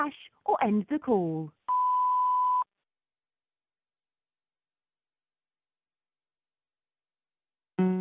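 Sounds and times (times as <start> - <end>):
speech: 0.0 - 1.6
voicemail beep: 1.7 - 2.7.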